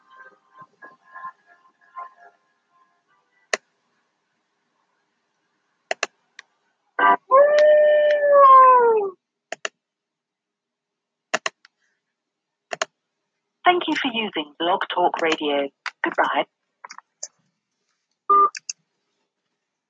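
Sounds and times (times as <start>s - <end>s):
sharp clicks: 5.9s - 6.5s, 9.5s - 9.8s, 11.3s - 11.8s, 12.7s - 12.9s
wolf howling: 7.0s - 9.2s
speech: 14.1s - 16.6s.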